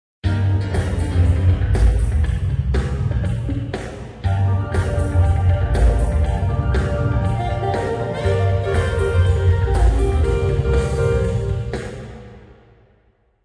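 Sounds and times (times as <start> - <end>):
big room electronic music: 0.3 - 12.6.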